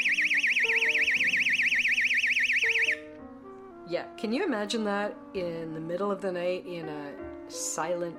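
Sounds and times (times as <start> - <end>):
portable personal alarm shrieking with a siren-like warbling tone: 0.0 - 3.0
speech: 3.9 - 8.1.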